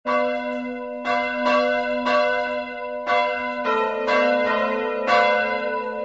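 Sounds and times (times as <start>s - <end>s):
wedding bells ringing: 0.1s - 6.0s.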